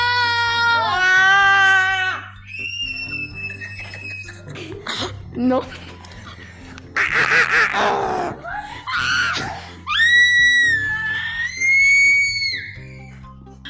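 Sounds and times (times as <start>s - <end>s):
people screaming in turn in a group: 0.0s - 4.6s, 7.0s - 12.9s
laughter: 3.4s - 8.8s
speech: 5.4s - 5.9s.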